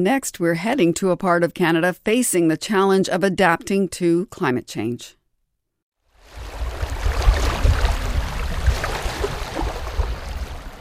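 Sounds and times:
speech: 0.0 - 5.2
St. Lawrence River water rushing and churning: 6.2 - 10.7.

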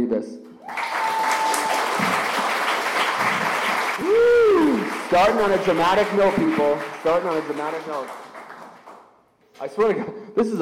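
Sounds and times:
speech: 0.0 - 0.9, 5.1 - 8.2, 9.6 - 10.6
faint cheers: 0.6 - 2.4, 3.9 - 5.0
audience applauding a guest: 0.6 - 9.1.

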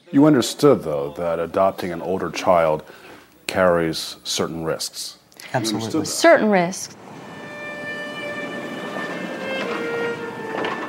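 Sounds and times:
speech: 0.1 - 7.0
brief rattling bursts: 7.0 - 10.8
thin metallic whines: 7.0 - 10.8
train rolling on rails from Moscow to Borovichi: 7.0 - 10.8.

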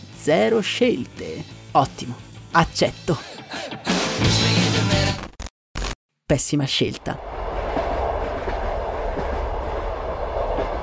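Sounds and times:
speech: 0.2 - 5.2, 6.3 - 7.4
rickety old train rattling along the tracks: 7.6 - 10.8.

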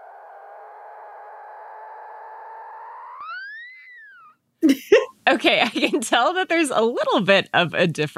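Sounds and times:
mother dolphin and calf whistling underwater: 2.7 - 4.4
speech: 4.7 - 8.1.

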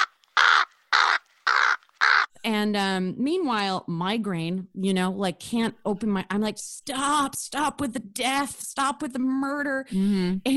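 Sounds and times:
person imitating raspy crow caws: 0.0 - 2.3
speech: 2.4 - 10.5.

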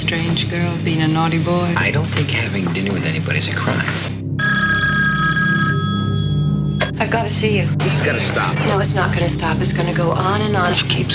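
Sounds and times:
speech: 0.0 - 4.2, 7.0 - 11.1
telephone ringing with buzzing bell tone: 4.4 - 7.0.

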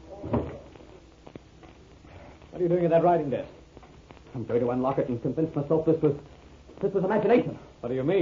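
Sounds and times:
door swinging shut with a solid thud: 0.2 - 0.6
speech: 2.6 - 3.6, 4.4 - 8.2.

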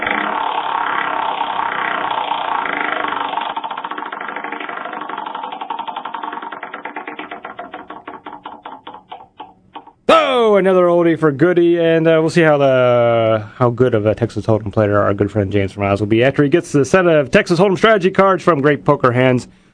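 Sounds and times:
prize wheel spinning and clicking: 0.2 - 9.9
speech: 10.1 - 19.6.

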